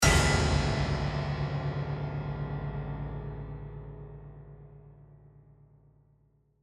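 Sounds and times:
piano lid crashing: 0.0s - 2.9s
horror piano chord: 0.0s - 5.9s.

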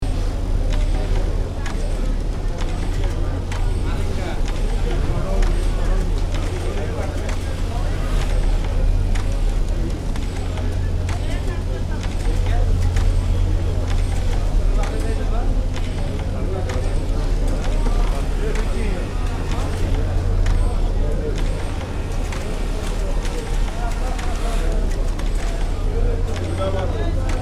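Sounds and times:
people chattering inside a refinery factory: 0.0s - 27.4s
refinery factory interior ambience: 0.0s - 27.4s.

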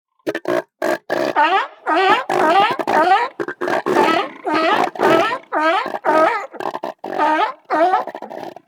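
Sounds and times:
group of sea lions barking: 1.2s - 8.6s.

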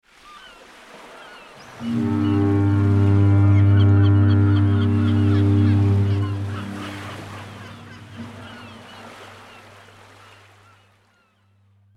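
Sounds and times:
distant fog horn of a ship passing by: 1.8s - 9.5s.

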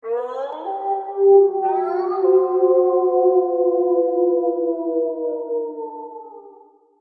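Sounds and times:
wild pack of wolves howling: 0.0s - 6.6s.

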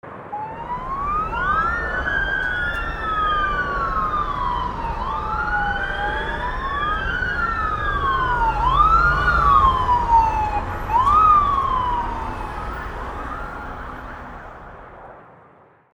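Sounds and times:
city traffic: 0.0s - 15.6s
ambulance sirens rushing to accident scene: 0.3s - 15.0s.

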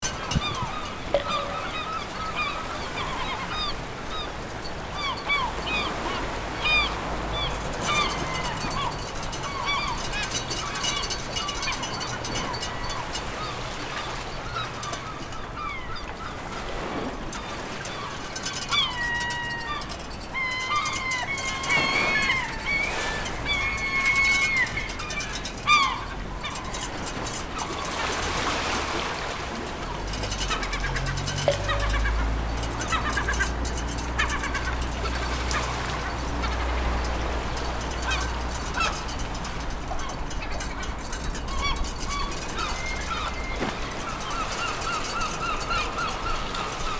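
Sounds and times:
waves crashing on pier: 0.0s - 46.9s.

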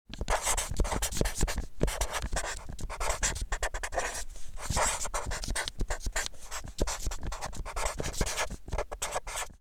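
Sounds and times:
permanent marker writing on paper surface: 0.2s - 9.6s.

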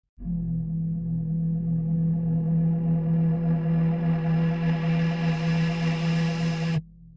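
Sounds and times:
low horror tension accent: 0.2s - 7.1s.

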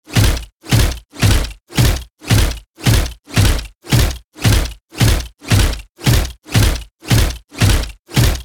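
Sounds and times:
robot support unit footsteps walking: 0.0s - 8.4s.

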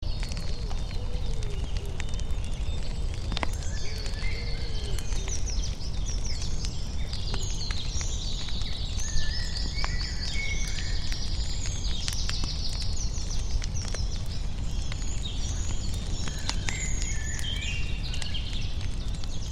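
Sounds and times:
forest campfire crackling: 0.0s - 19.4s.

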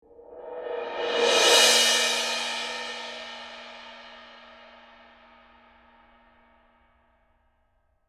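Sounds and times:
suspended cymbal roll: 0.2s - 6.1s.

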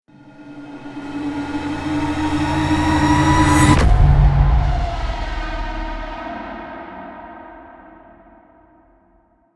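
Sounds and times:
horror cinematic string riser: 0.2s - 6.5s.

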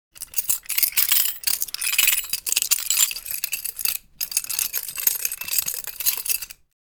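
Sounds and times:
prison guard keys handled with metal rattling: 0.2s - 6.7s.

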